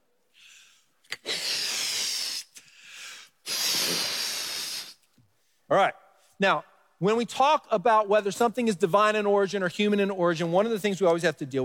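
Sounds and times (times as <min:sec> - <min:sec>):
air hissing while inflating a balloon: 0:01.2 - 0:02.7, 0:03.4 - 0:05.2
speech: 0:05.7 - 0:11.6.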